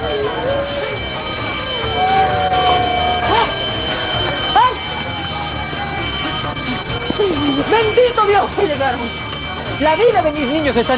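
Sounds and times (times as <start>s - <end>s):
school fire alarm siren: 0.0s - 10.9s
speech: 8.8s - 10.9s.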